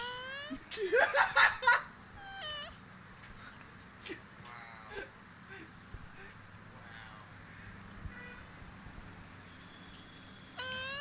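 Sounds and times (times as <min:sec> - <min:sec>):
two mating turtles squeaky cat-like cries: 0:00.0 - 0:00.7, 0:02.2 - 0:02.8, 0:10.6 - 0:10.9
speech: 0:00.5 - 0:01.5.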